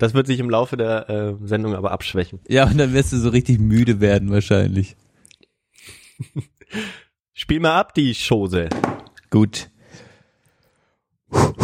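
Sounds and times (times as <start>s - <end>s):
speech: 0.0s - 5.0s, 5.8s - 9.7s
heavy breathing close to the microphone: 6.7s - 7.2s, 9.8s - 11.6s
forceful puffs of breath: 11.3s - 11.6s.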